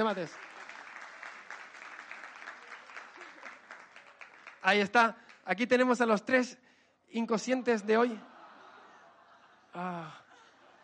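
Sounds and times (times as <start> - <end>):
speech: 0.0 - 0.6, 4.6 - 8.3, 9.8 - 10.2
audience applauding three young volunteers on a stage: 0.0 - 5.4
laughter: 7.9 - 10.8.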